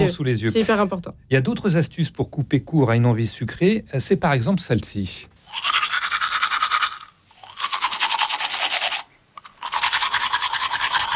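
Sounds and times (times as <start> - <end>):
speech: 0.1 - 5.6
vigorous tooth brushing with mint toothpaste: 5.4 - 11.1.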